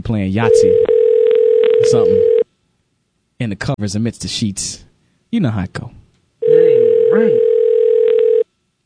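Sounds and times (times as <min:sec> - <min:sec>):
speech: 0:00.1 - 0:00.9, 0:01.8 - 0:02.3, 0:03.4 - 0:06.0, 0:07.1 - 0:07.5
telephone ringback tone on an outgoing call: 0:00.5 - 0:02.4, 0:06.4 - 0:08.4.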